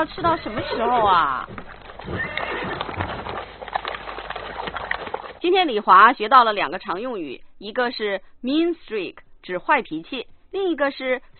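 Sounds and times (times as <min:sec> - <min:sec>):
speech: 0:00.0 - 0:03.3, 0:05.4 - 0:11.3
horse hooves clip-clopping: 0:00.0 - 0:05.4
ridden horse whinnying: 0:00.0 - 0:05.4.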